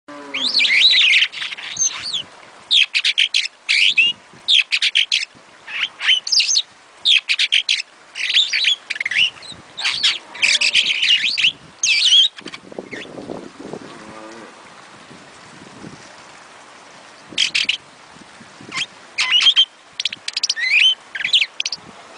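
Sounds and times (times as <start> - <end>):
starling singing clipped chirps, squeaky whistles and buzzy notes: 0.1 - 13.2, 17.2 - 17.8, 18.7 - 22.1.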